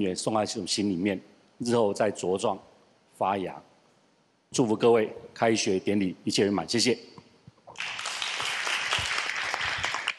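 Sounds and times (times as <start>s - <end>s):
speech: 0.0s - 3.7s, 4.5s - 8.0s
audience applause: 7.8s - 10.1s.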